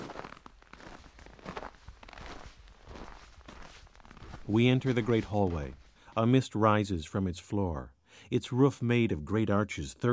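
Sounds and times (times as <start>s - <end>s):
footsteps crunching over packed snow or ice inside an ice hotel: 0.0s - 6.5s
speech: 4.5s - 10.1s.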